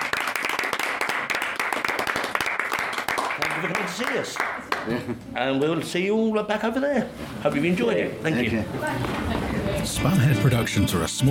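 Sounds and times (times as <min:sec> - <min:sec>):
audience applause at a fan event: 0:00.0 - 0:05.0
speech: 0:03.6 - 0:11.3.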